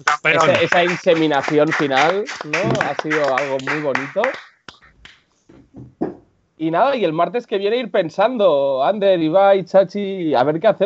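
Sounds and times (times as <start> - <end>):
laughter: 0.0 - 4.2
speech: 0.0 - 4.5, 5.8 - 10.8
sparse hand claps: 0.0 - 5.2.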